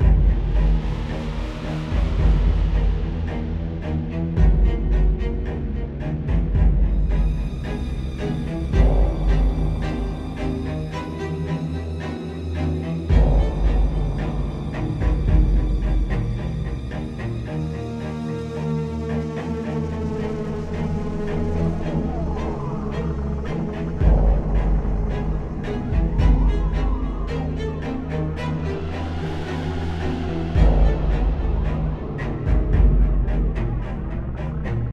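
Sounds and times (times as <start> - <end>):
scary music: 0.0 - 34.9.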